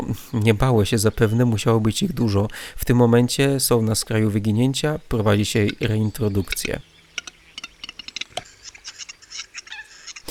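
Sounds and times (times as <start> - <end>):
speech: 0.2 - 6.9
western capercaillie males displaying with dry clicks, ticking pops and wheezing notes: 5.1 - 10.2.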